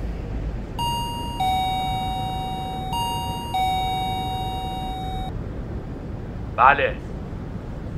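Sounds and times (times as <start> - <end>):
constant low rumble: 0.0 - 7.9
electronic intercom door chime with two-tone high-low pattern: 0.8 - 5.3
speech: 6.6 - 7.1.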